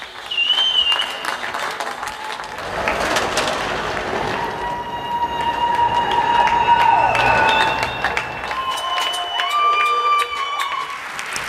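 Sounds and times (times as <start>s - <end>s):
cheering: 0.0s - 11.4s
crowd clapping for care workers: 0.0s - 11.4s
high whistles: 0.2s - 1.7s, 4.6s - 10.7s.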